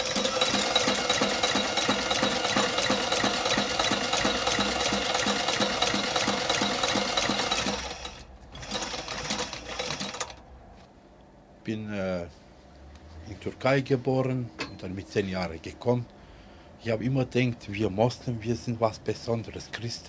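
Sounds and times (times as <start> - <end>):
sewing machine stitching in a repair shop: 0.0 - 10.4
speech: 13.3 - 16.2, 16.8 - 20.0.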